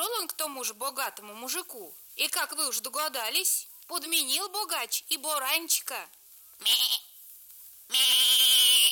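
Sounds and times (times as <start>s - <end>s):
speech: 0.2s - 7.1s, 7.9s - 8.9s
ram bleating: 6.6s - 7.2s, 7.9s - 8.9s.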